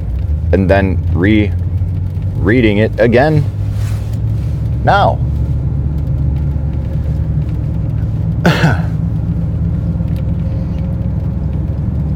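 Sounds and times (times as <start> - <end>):
truck passing on the road with heavy low rumble: 0.0 - 12.1
speech: 0.5 - 1.6, 2.4 - 3.6, 4.8 - 5.3
sharp cough-like burst: 8.5 - 9.0.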